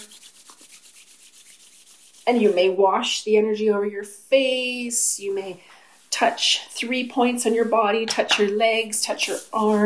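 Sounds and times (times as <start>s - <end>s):
palms rubbing together briskly at the close of a guided meditation: 0.0s - 2.9s, 5.2s - 9.8s
speech: 2.3s - 9.8s.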